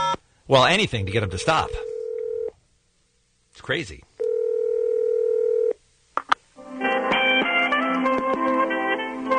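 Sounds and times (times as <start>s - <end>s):
speech: 0.5s - 1.9s, 3.6s - 4.1s
telephone dial tone: 1.8s - 2.5s, 4.2s - 5.8s
tonal music on a telephone line: 6.6s - 9.3s.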